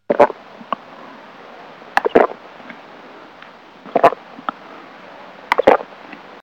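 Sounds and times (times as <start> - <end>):
person drinking: 0.1 - 0.8, 2.0 - 2.8, 3.9 - 4.6, 5.5 - 5.9.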